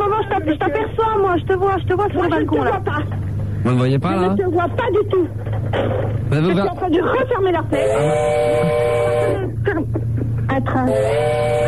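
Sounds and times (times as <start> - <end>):
speech: 0.3 - 10.0, 10.6 - 11.6
train at a railway station giving a sustained wailing multi-tone sound: 7.7 - 9.5, 10.8 - 11.6.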